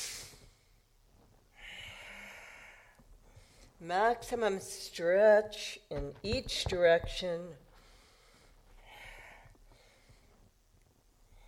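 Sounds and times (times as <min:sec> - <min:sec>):
deep breaths through the nose during a yoga kriya in cat-cow pose: 0:01.5 - 0:03.8, 0:07.7 - 0:10.5
speech: 0:03.8 - 0:07.6.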